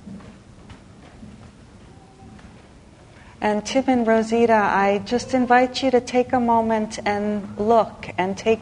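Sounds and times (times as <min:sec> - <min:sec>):
footsteps of several people shuffling as a group gathers: 0:00.0 - 0:03.3
low murmur of movement: 0:00.0 - 0:08.6
speech: 0:03.4 - 0:08.6.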